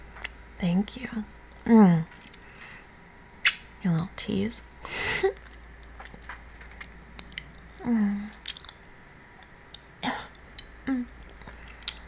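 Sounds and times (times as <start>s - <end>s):
low hiss: 0.0s - 12.0s
speech: 0.6s - 2.2s, 3.8s - 5.4s, 7.8s - 8.3s
wet sucking on fingers to moisten them: 2.4s - 12.0s.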